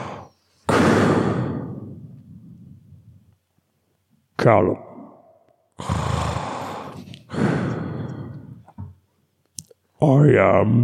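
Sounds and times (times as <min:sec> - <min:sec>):
short breathy puff: 0:00.0 - 0:02.0, 0:05.8 - 0:08.6
voice imitating heavy raspy mask breathing: 0:00.0 - 0:02.7, 0:05.8 - 0:08.7
speech: 0:04.4 - 0:04.9, 0:05.8 - 0:06.0, 0:10.0 - 0:10.8.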